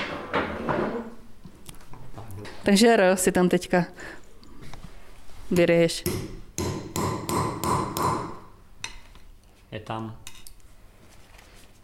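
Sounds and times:
speech: 2.6 - 4.2, 5.5 - 6.4, 9.9 - 10.2
hammer striking metal punch to stamp initials into material: 6.0 - 8.5.

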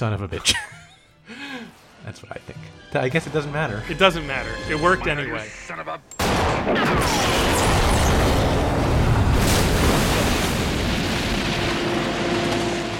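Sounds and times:
speech: 0.0 - 0.8, 2.0 - 7.6
big movie-style explosion blast: 6.2 - 12.8
crackling debris: 6.2 - 12.9.

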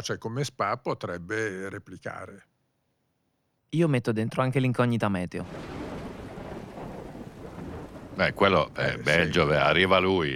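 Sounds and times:
speech: 0.0 - 2.5, 3.7 - 5.8, 8.2 - 10.3
deep thunder rumble: 5.4 - 10.0
heavy rain hissing in a thunderstorm: 5.5 - 10.3.

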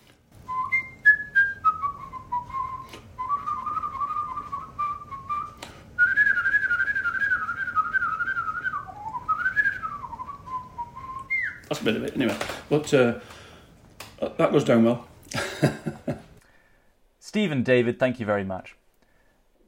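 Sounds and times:
person whistling a lively violin-style melody: 0.5 - 11.7
speech: 11.8 - 13.4, 14.4 - 16.0, 17.4 - 18.8
laughter: 15.4 - 16.3.

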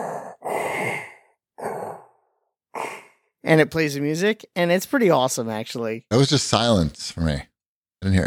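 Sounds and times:
respirator-style breathing from a character emote in a video game: 0.0 - 3.4
speech: 3.5 - 8.2.

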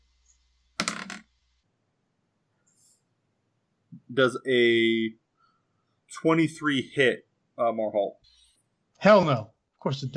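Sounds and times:
dice tumbling across a hard table: 0.8 - 1.3
speech: 4.1 - 5.2, 6.1 - 8.4, 9.0 - 10.1.

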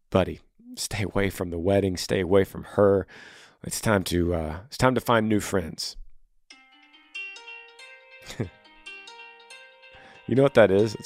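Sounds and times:
speech: 0.1 - 6.0, 8.3 - 8.6, 10.3 - 11.0
electronic phone reminder alert tone: 6.5 - 11.0
laughter: 8.2 - 8.6.

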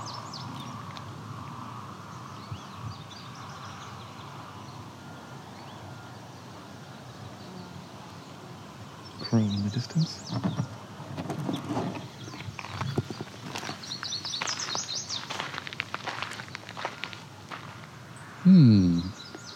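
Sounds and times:
warbler singing a short thin high-pitched phrase: 0.0 - 19.5
speech: 9.3 - 10.7, 18.5 - 19.1
footsteps: 12.4 - 17.9.

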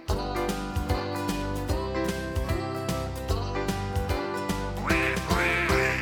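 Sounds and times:
bouncy full musical backing: 0.0 - 6.0
duck quacking: 4.8 - 6.0.

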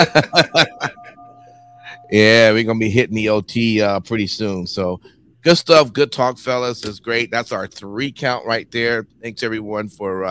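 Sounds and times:
speech: 0.0 - 0.7, 2.1 - 10.2
person chuckling: 0.0 - 2.0
bell clanging: 0.0 - 2.8.

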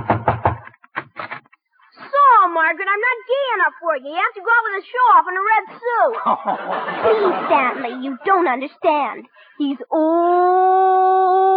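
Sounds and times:
knocking on the wooden door of the house next door: 0.0 - 1.2
speech: 2.6 - 10.9
laughter: 5.6 - 8.8.

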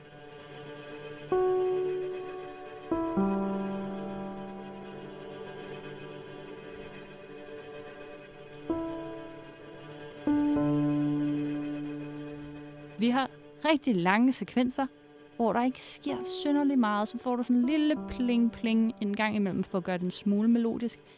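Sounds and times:
droning ambient film score: 0.0 - 21.1
speech: 1.3 - 1.5, 13.0 - 21.1.

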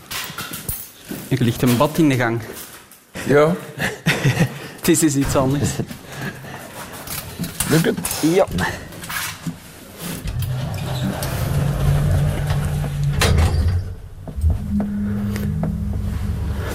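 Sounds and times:
speech: 1.3 - 6.4, 7.7 - 8.9
elevator in motion humming: 10.2 - 16.7
elevator sliding-door clunks and rattles: 10.2 - 16.7.

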